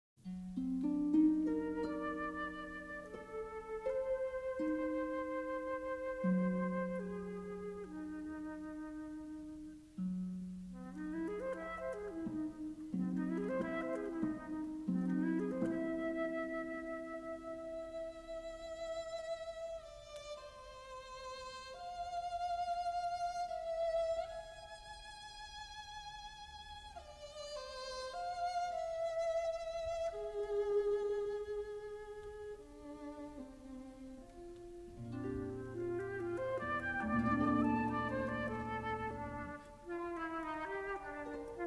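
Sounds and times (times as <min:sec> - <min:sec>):
harp: 0:00.2 - 0:41.6
viola: 0:00.2 - 0:41.6
flute: 0:00.3 - 0:41.6.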